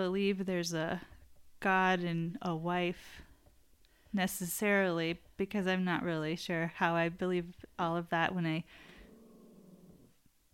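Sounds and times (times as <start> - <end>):
speech: 0.0 - 3.3, 4.1 - 8.9
pet growling: 8.9 - 10.2.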